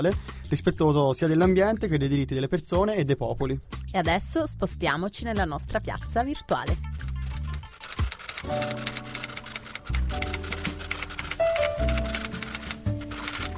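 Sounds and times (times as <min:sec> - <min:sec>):
speech: 0:00.0 - 0:07.0, 0:08.4 - 0:09.1
sustained musical bed: 0:00.0 - 0:13.5
fingers typing rapidly on a keyboard: 0:07.0 - 0:13.5.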